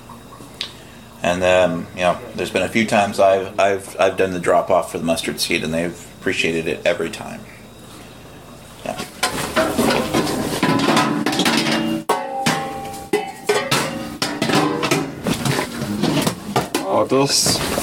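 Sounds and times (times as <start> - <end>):
speech: 1.2 - 7.6, 17.1 - 17.8
pots and pans clattering while searching a kitchen for a pan lid: 8.9 - 17.8.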